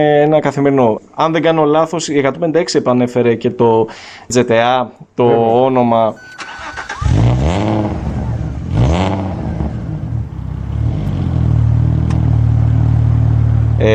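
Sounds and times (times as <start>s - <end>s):
speech: 0.0s - 6.6s, 13.8s - 13.9s
V6 car engine revving: 6.4s - 13.9s.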